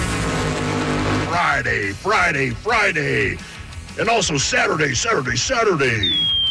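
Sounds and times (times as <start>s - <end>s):
racing engines revving: 0.0s - 2.6s
speech: 1.6s - 6.4s.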